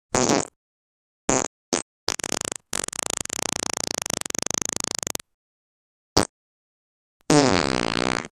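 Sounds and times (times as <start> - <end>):
small fart noises sound effect: 0.1 - 0.6, 1.3 - 5.3, 7.2 - 8.3.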